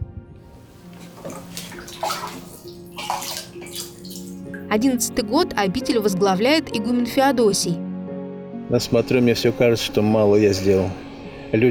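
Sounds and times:
water pouring and splashing from a spring: 0.5s - 4.8s
speech: 4.7s - 7.9s, 8.7s - 11.6s.

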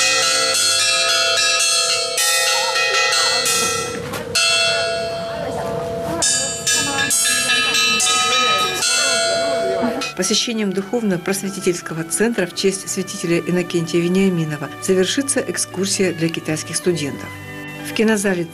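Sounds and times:
small skete bell ringing at a church compound: 0.0s - 10.5s
faint voices murmuring: 0.0s - 18.5s
speech: 10.2s - 18.5s.

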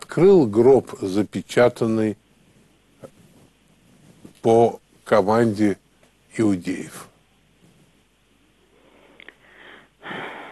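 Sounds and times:
speech: 0.2s - 2.2s, 4.4s - 5.8s, 6.4s - 7.1s
heavy breathing into the microphone: 8.7s - 10.5s.

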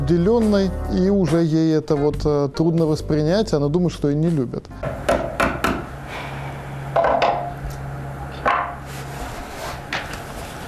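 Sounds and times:
low steady hum: 0.0s - 10.6s
speech: 0.1s - 5.3s
hammer striking wood: 4.8s - 5.9s, 8.4s - 8.8s.

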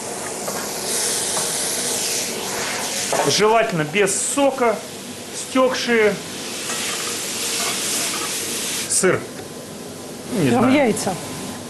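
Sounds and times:
speech: 3.2s - 4.9s, 5.5s - 6.3s, 9.0s - 9.3s, 10.3s - 11.3s
tomatoes sizzling in a hot frying pan with browned onion, pepper and zucchini: 6.0s - 9.0s.

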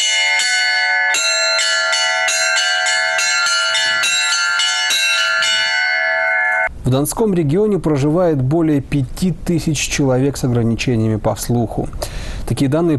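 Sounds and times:
new church bells pealing: 0.0s - 6.7s
speech: 6.9s - 12.9s.

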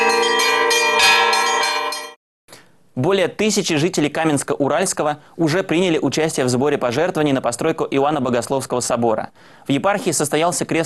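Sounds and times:
church bells rung from a cathedral bell tower during a bell-ringing masterclass: 0.0s - 2.2s
speech: 3.0s - 10.8s.

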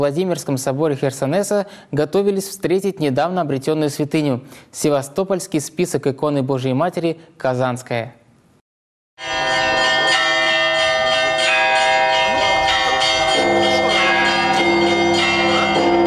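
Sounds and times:
speech: 0.0s - 8.2s
church bells ringing: 9.2s - 16.0s.

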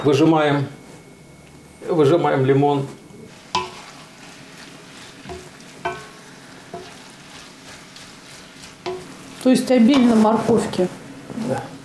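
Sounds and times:
speech: 0.0s - 0.8s, 1.8s - 3.0s, 9.4s - 11.7s
sharp metallic clinks from stirring: 0.0s - 7.0s
food frying in a pan until half-cooked: 0.0s - 11.8s.

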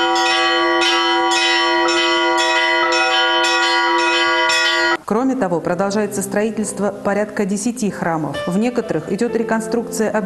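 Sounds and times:
church bells pealing: 0.0s - 5.0s
speech: 5.3s - 10.2s.

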